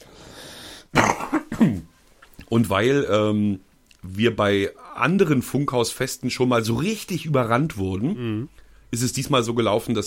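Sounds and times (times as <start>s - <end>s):
faint hiss of room noise: 0.0s - 10.0s
person coughing: 1.0s - 1.9s
speech: 1.6s - 1.9s, 2.5s - 10.0s.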